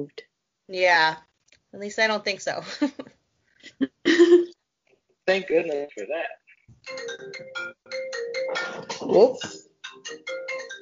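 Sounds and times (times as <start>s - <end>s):
speech: 0.0s - 3.1s, 3.8s - 4.5s, 5.3s - 9.6s
iPhone marimba ringtone: 6.9s - 10.8s.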